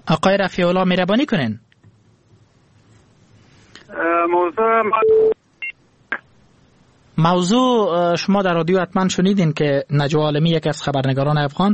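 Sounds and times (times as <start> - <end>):
speech: 0.1 - 1.6, 3.9 - 5.4, 7.2 - 11.7
garbled voice on a telephone line: 3.9 - 5.4
short steady disconnected line tone: 4.4 - 5.4.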